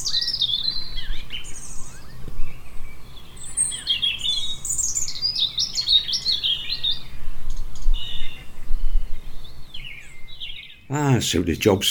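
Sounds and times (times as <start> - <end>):
several birds chirping and trilling: 0.0 - 11.8
steady low outdoor hum: 0.0 - 11.8
speech: 10.9 - 11.8.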